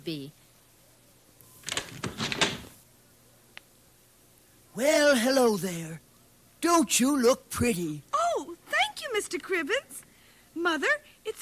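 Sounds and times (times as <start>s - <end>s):
speech: 0.0s - 0.4s, 4.8s - 6.0s, 6.6s - 8.1s, 9.0s - 10.0s, 10.6s - 11.4s
front door unlatched and pulled open: 1.6s - 2.8s.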